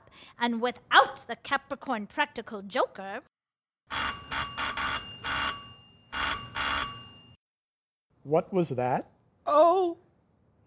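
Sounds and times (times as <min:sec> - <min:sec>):
speech: 0:00.3 - 0:03.3, 0:08.2 - 0:10.0
doorbell ringing: 0:03.9 - 0:07.4.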